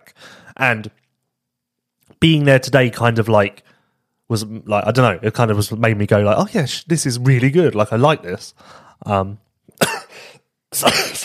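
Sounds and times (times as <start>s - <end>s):
speech: 0.1s - 1.0s, 2.1s - 3.7s, 4.3s - 11.2s
person clearing throat: 9.8s - 10.2s, 10.8s - 11.2s
person coughing from dust in throat: 9.8s - 11.2s.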